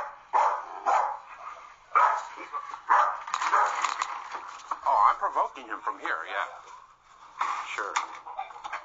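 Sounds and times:
dog barking: 0.0 - 3.9
speech: 5.1 - 6.7, 7.4 - 8.3.

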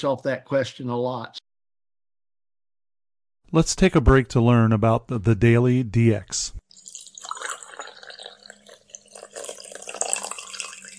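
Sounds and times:
speech: 0.0 - 1.4, 3.5 - 6.6
coffee pouring into a cup: 6.7 - 10.9.

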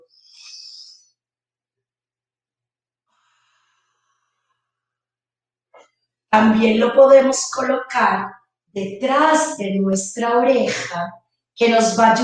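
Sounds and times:
person inhaling and exhaling deep breaths: 3.2 - 4.5
speech: 6.3 - 12.2.

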